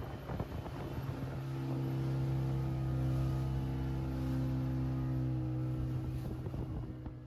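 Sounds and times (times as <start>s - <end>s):
wind buffeting the microphone at sea: 0.0s - 3.2s, 5.1s - 7.2s
boat engine droning during a sea crossing to Lombok: 0.0s - 7.2s.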